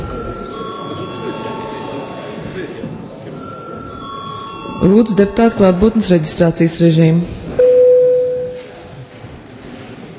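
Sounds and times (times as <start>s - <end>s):
electric session bell ringing in parliament chamber: 0.0s - 2.4s, 3.4s - 5.8s
low murmur of voices in a large hall: 0.0s - 10.1s
speech: 4.8s - 7.4s.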